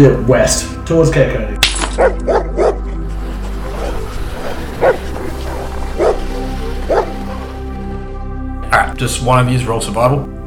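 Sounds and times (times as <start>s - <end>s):
speech: 0.0s - 2.3s, 9.0s - 10.4s
sled dogs barking in a sled team: 2.0s - 7.3s
rumble: 2.2s - 8.4s.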